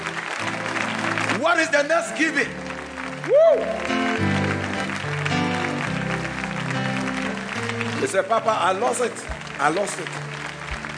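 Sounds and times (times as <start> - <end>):
crowd clapping: 0.0 - 10.9
keyboard or organ chords: 0.0 - 10.9
speech: 1.5 - 2.6, 3.2 - 4.0, 8.0 - 10.3.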